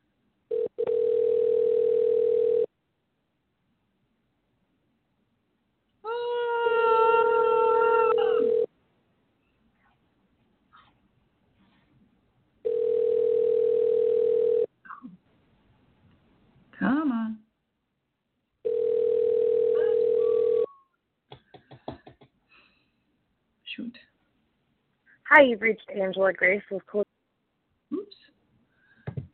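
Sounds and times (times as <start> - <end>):
telephone dial tone after a dropped call: 0.5 - 2.7, 8.1 - 8.7, 12.7 - 14.7, 18.7 - 20.7
brief cat-like meow: 6.1 - 8.6
speech: 25.4 - 27.0.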